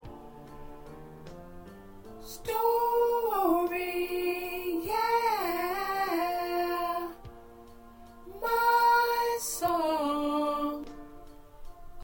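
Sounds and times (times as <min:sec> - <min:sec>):
alto choir voices singing gospel songs: 0:02.2 - 0:11.8.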